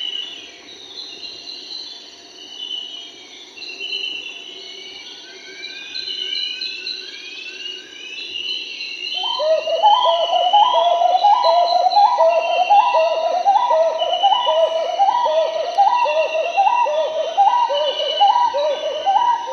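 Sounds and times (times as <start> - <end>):
Marbled Wood-Quail song of mellow two-part hoots in South America: 9.2 - 19.5.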